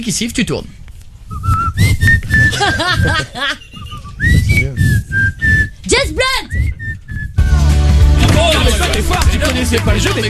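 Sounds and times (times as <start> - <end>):
speech: 0.0 - 0.8, 2.5 - 4.4, 5.9 - 6.8, 8.4 - 10.2
person whistling a tune: 1.3 - 7.5
laughter: 2.5 - 4.0, 8.3 - 10.2.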